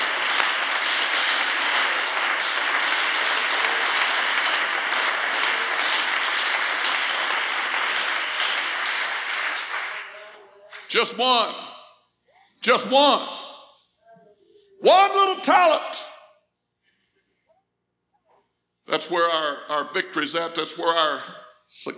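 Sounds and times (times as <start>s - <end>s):
audience applauding: 0.0s - 11.6s
speech: 10.9s - 11.7s, 12.6s - 13.4s, 14.8s - 16.0s, 19.1s - 21.9s.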